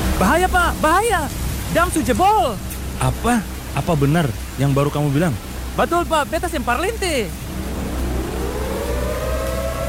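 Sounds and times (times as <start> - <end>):
speech: 0.2 - 7.5
warning siren wailing: 0.7 - 2.9, 8.0 - 9.8.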